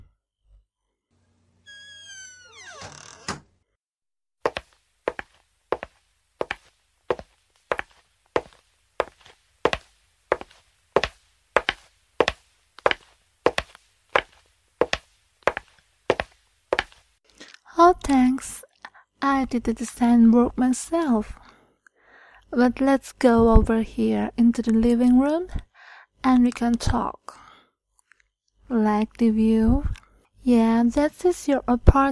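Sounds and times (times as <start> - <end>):
door creaking and shutting with a solid thud: 1.6 - 3.6
steady footsteps on a hard floor: 4.5 - 17.1
speech: 18.0 - 18.6, 19.2 - 21.4, 22.6 - 27.4, 28.7 - 32.1.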